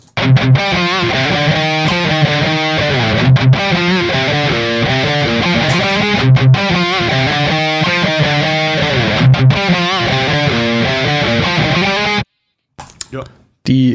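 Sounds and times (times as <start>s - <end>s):
reamped distorted electric guitar riff through an Orange cabinet: 0.0s - 12.3s.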